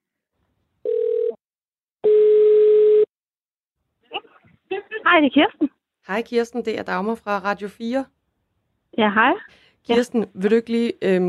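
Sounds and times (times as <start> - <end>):
outgoing telephone call ringback tone: 0.9 - 1.4, 2.0 - 3.1
speech: 5.2 - 8.2, 9.0 - 11.2.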